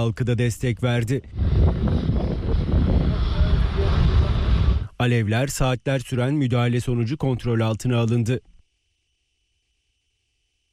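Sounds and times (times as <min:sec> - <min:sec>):
speech: 0:00.0 - 0:02.1, 0:05.0 - 0:08.5
firefighting aircraft engine droning overhead while fighting a forest fire in Kocaeli Turkey: 0:01.2 - 0:05.0
indistinct voices: 0:02.1 - 0:05.0.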